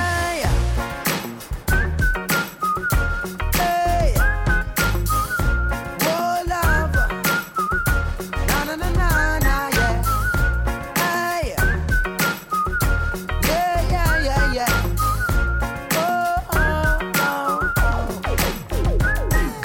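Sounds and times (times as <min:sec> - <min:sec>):
deep bass: 0:00.0 - 0:01.0, 0:01.6 - 0:02.2, 0:03.0 - 0:05.8, 0:06.6 - 0:07.1, 0:07.9 - 0:10.8, 0:11.6 - 0:12.0, 0:12.8 - 0:15.7, 0:16.6 - 0:17.0, 0:17.8 - 0:19.6
steady pounding drum beat: 0:00.3 - 0:19.6
person whistling a lively sliding melody: 0:01.7 - 0:19.6.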